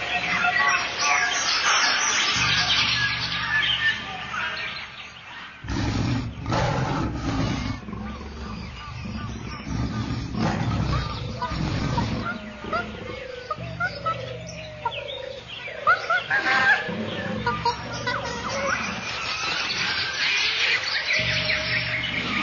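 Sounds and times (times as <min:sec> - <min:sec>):
birds chirping in jungle: 0:00.0 - 0:22.4
jungle ambience: 0:00.0 - 0:22.4
jaguar roaring: 0:05.6 - 0:22.4.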